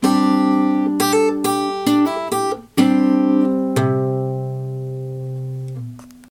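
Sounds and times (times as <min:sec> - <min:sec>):
guitar embellishment lick in A major shape: 0:00.0 - 0:06.3.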